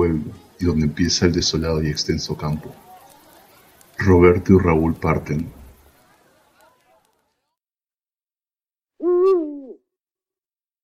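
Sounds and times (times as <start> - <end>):
faint low murmuring: 0.0 - 7.6
speech: 0.2 - 2.8, 4.0 - 5.6
owl hooting in open countryside: 9.0 - 9.8.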